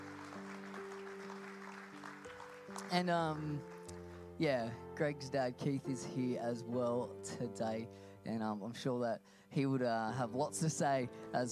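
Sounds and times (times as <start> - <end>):
audience applause: 0.0 - 4.2
speech: 2.9 - 3.8, 4.4 - 11.5.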